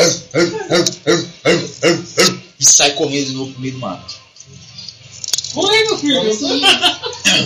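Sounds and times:
human voice imitating a dog barking: 0:00.0 - 0:02.5
speech: 0:00.4 - 0:02.0, 0:03.0 - 0:04.7, 0:05.5 - 0:07.4
laughter: 0:06.2 - 0:07.4.

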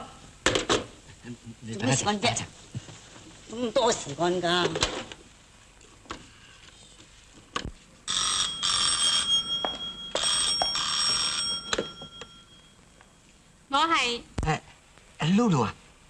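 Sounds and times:
speech: 0:01.2 - 0:02.9, 0:03.5 - 0:05.1, 0:14.0 - 0:14.6, 0:15.3 - 0:15.8
telephone ringing with jangling bell tone: 0:08.1 - 0:13.2.

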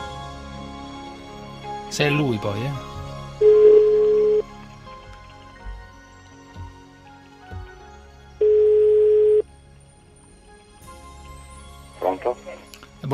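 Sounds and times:
speech: 0:01.9 - 0:03.5
ringback tone of an outgoing telephone call: 0:03.4 - 0:04.4, 0:08.4 - 0:09.4.

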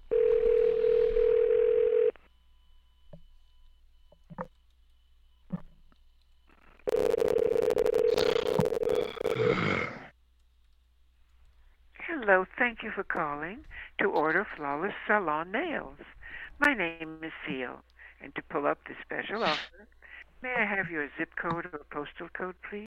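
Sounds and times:
steady electronic telephone tone on a held line: 0:00.0 - 0:02.3, 0:06.6 - 0:09.5
speech: 0:12.3 - 0:22.8.

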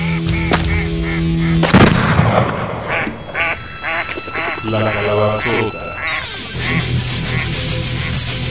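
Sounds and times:
ducks or geese honking and quacking: 0:00.0 - 0:01.7, 0:02.8 - 0:08.4
shotgun blasts: 0:01.6 - 0:02.9.

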